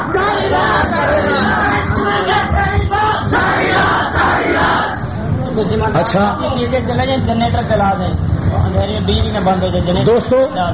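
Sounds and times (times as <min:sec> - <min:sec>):
crowd chanting political slogans: 0:00.0 - 0:05.2
speech: 0:05.6 - 0:10.7.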